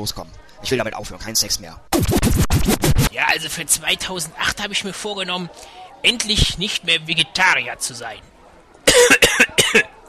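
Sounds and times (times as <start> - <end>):
speech: 0.0 - 8.3, 9.0 - 9.9
loud fit of harsh coughing: 8.9 - 9.9.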